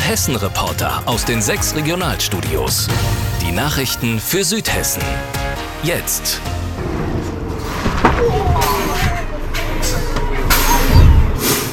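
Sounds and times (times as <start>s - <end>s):
speech: 0.1s - 7.1s
steady bus engine rumble: 6.7s - 11.7s
bus braking hard in an emergency full stop: 8.8s - 11.7s.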